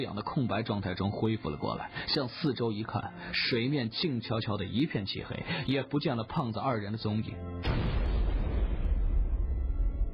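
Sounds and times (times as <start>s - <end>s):
speech: 0.0s - 8.0s
detonation blast echoing in a water-filled cave: 7.6s - 10.1s.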